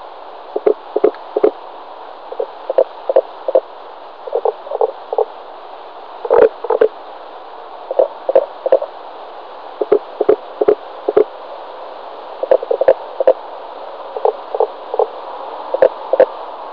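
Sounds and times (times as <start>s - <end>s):
Pelobates fuscus calling: 0.6s - 1.6s, 2.3s - 5.3s, 6.2s - 6.9s, 7.9s - 8.9s, 9.8s - 11.3s, 12.4s - 13.4s, 14.2s - 15.1s, 15.7s - 16.3s.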